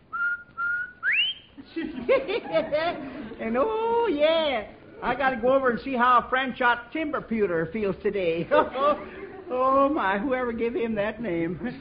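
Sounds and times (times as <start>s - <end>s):
person whistling: 0.1s - 1.6s
laughter: 1.6s - 3.8s, 8.4s - 10.0s
speech: 2.1s - 11.7s.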